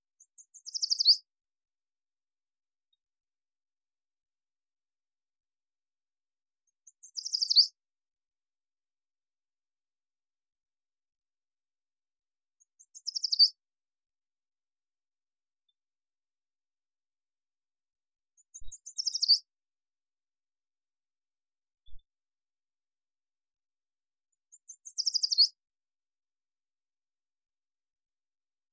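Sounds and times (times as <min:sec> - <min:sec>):
Yellow Warbler: 0:00.0 - 0:01.4, 0:02.6 - 0:08.4, 0:10.5 - 0:14.6, 0:15.2 - 0:19.6, 0:21.4 - 0:25.8.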